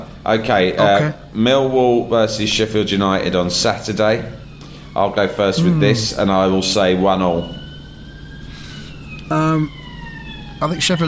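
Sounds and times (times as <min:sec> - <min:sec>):
low continuous hum: 0:00.0 - 0:11.0
speech: 0:00.2 - 0:04.4, 0:05.0 - 0:07.6, 0:09.5 - 0:09.8, 0:10.6 - 0:11.0
siren tone on a city street at King's Cross: 0:00.8 - 0:01.3, 0:02.8 - 0:11.0.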